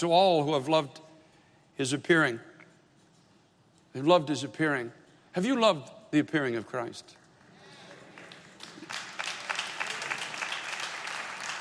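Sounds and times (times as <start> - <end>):
speech: 0.0 - 1.0, 1.8 - 2.5, 3.9 - 7.2
feeble applause from an audience: 7.4 - 11.5.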